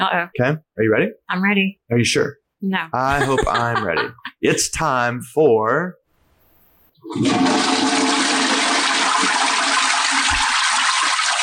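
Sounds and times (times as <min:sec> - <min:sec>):
speech: 0:00.0 - 0:06.0, 0:07.0 - 0:08.0
laughter: 0:03.0 - 0:05.1
toilet flush sound effect: 0:07.0 - 0:11.4.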